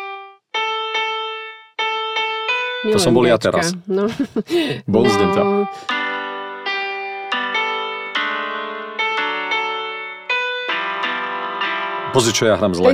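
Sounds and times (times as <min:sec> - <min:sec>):
piano notes from a mobile phone piano app: 0:00.0 - 0:12.9
speech: 0:02.8 - 0:06.0, 0:12.2 - 0:12.9
laughter: 0:03.3 - 0:05.3.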